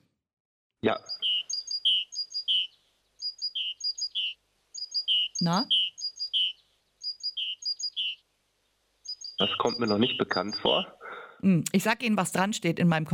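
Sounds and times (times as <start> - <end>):
speech: 0.8 - 1.2, 5.4 - 5.8, 9.4 - 13.1
great tit singing a high two-note phrase: 0.9 - 8.3, 9.0 - 11.1.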